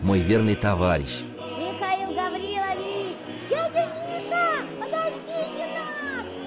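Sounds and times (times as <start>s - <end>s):
speech: 0.1s - 1.3s
neighbours' children chattering and calling out outdoors: 1.6s - 6.4s.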